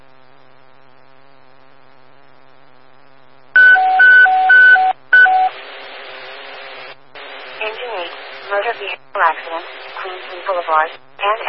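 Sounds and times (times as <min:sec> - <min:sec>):
electronic emergency dispatch alert tone with alternating high and low beeps: 0:03.6 - 0:05.6
speech: 0:09.2 - 0:11.4.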